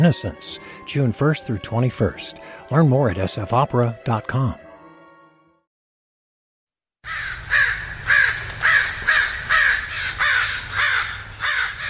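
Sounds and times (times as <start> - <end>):
speech: 0.0 - 4.6
crows cawing: 7.0 - 11.8.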